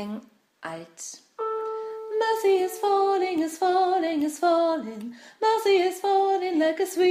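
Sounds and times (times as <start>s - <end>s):
gospel choir singing: 1.4s - 6.9s.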